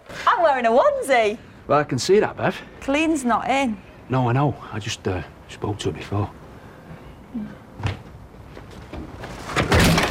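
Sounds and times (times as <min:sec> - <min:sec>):
speech: 0:00.4 - 0:06.4, 0:07.3 - 0:07.6
house door slammed shut by a woman: 0:09.5 - 0:10.0.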